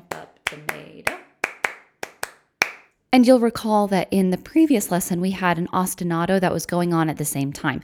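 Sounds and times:
hands clapping a lively uneven rhythmic pattern: 0.0s - 2.9s
speech: 3.1s - 7.8s.

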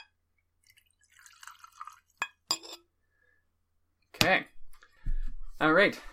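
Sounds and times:
Jura scotch whisky poured into a glass: 0.6s - 2.5s
speech: 4.2s - 4.5s, 5.6s - 6.1s.

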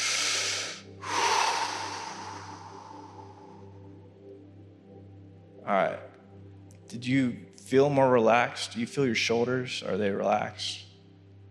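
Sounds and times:
group taking a deep breath and exhaling during a relaxation exercise: 0.0s - 4.3s
speech: 5.7s - 6.1s, 6.9s - 10.8s.

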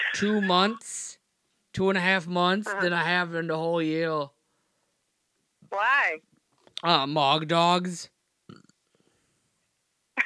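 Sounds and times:
speech: 0.1s - 1.0s, 1.8s - 4.4s, 5.7s - 8.6s
man belching after eating many hot dogs: 8.5s - 8.8s.

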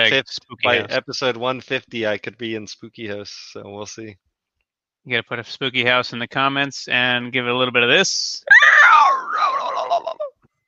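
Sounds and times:
speech: 0.0s - 4.2s, 5.0s - 8.6s
dog screaming: 8.5s - 10.3s.

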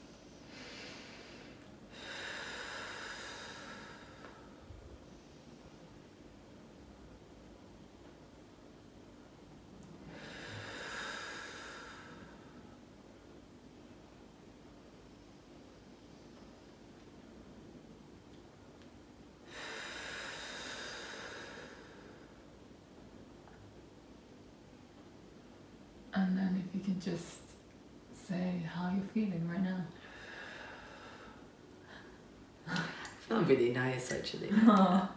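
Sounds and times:
slow deep breaths in and out: 0.0s - 6.0s, 10.0s - 12.8s, 19.4s - 22.5s, 30.0s - 33.2s
speech: 26.2s - 27.4s, 28.3s - 30.0s, 33.4s - 35.1s.

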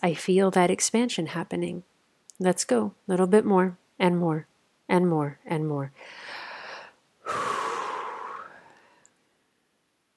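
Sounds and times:
speech: 0.0s - 6.3s
person breathing deeply during a guided breathing exercise: 6.0s - 9.2s.

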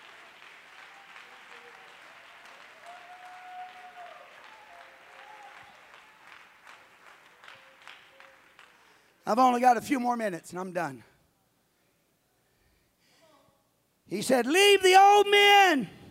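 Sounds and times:
faint voices and cheers: 0.0s - 6.7s
church audience clapping: 0.0s - 9.6s
speech: 9.3s - 11.1s, 14.1s - 16.0s.

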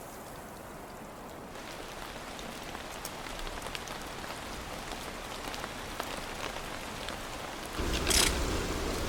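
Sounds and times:
heavy snow falling through pine forests of the Sierra de Guadarrama: 0.0s - 9.0s.

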